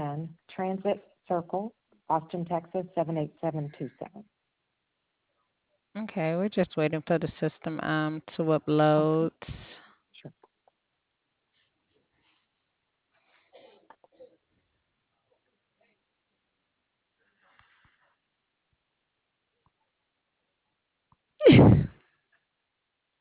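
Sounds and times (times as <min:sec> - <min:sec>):
speech: 0:00.2 - 0:04.4, 0:06.0 - 0:10.4
person sneezing: 0:21.4 - 0:22.0.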